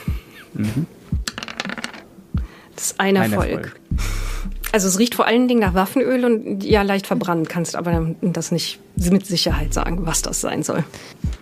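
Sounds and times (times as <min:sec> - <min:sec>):
speech: 0:00.6 - 0:01.0, 0:02.8 - 0:03.8, 0:04.7 - 0:11.4
dice rattling across a table during a role-playing game: 0:01.3 - 0:02.0.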